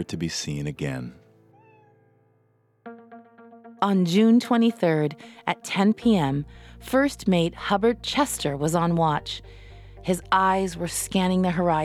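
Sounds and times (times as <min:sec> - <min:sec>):
speech: 0:00.0 - 0:01.2, 0:03.8 - 0:11.8
cat meowing plaintively: 0:01.6 - 0:02.2.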